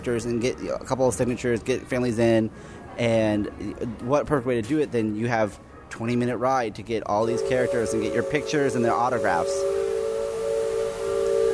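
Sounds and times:
speech: 0.0s - 9.8s
riverboat steam whistle blowing: 7.2s - 11.5s.

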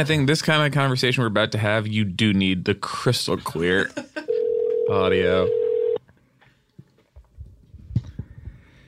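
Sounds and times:
speech: 0.0s - 4.2s, 4.9s - 5.6s
steady tone from a phone set on a table: 4.3s - 6.0s.

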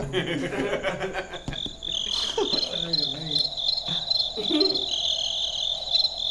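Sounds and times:
soft chuckle: 0.0s - 2.9s, 3.9s - 4.9s
crickets chirping: 0.0s - 6.2s.

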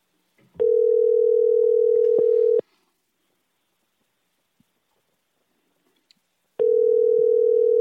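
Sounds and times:
phone ringback tone over the line: 0.6s - 2.6s, 6.6s - 7.8s.

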